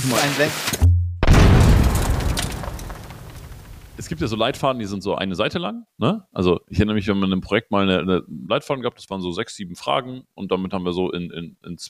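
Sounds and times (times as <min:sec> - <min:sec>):
speech: 0:00.0 - 0:00.9, 0:04.0 - 0:11.8
explosion sound effect with deep low boom: 0:00.8 - 0:04.6.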